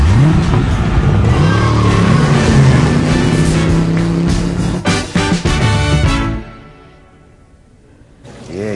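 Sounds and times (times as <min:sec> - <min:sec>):
car engine revving and accelerating in a TV commercial: 0:00.0 - 0:06.2.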